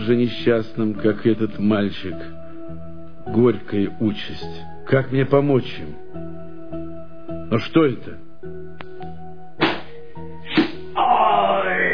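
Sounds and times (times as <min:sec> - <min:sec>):
speech: 0:00.0 - 0:02.4, 0:03.2 - 0:06.4, 0:07.5 - 0:08.2
heavy thwacking blows as a person is beaten: 0:09.6 - 0:10.9.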